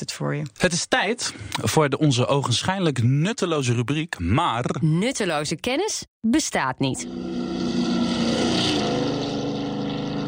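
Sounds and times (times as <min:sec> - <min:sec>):
speech: 0:00.0 - 0:07.8
motorboat engine roaring past with Doppler pitch shift: 0:07.0 - 0:10.2.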